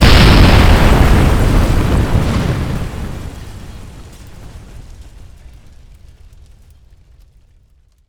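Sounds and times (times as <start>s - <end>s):
large explosion: 0.0s - 5.6s.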